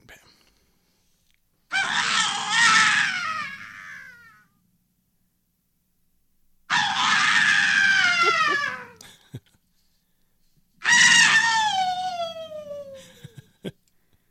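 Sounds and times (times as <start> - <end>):
long piercing screams recorded dry without reverb: 1.7 - 4.4, 6.7 - 9.0, 10.8 - 13.2.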